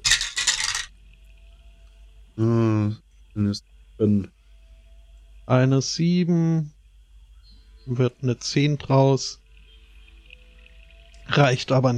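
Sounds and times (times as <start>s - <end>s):
twenty-sided die clattering as it is rolled: 0.0s - 0.9s
speech: 2.4s - 4.4s, 5.5s - 6.8s, 7.9s - 9.4s, 11.3s - 11.9s.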